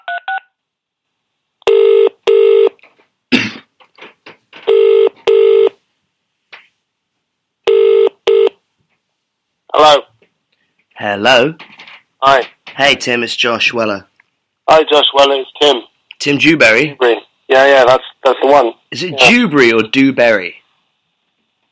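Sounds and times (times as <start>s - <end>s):
double-pulse telephone ringing tone over the phone line: 1.7s - 2.7s, 4.7s - 5.8s, 7.7s - 8.6s
speech: 11.0s - 14.1s, 14.7s - 20.6s.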